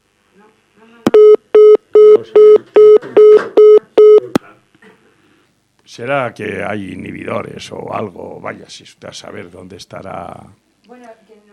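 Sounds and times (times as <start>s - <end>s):
telephone busy tone beeps: 1.1s - 4.3s
speech: 6.0s - 10.6s.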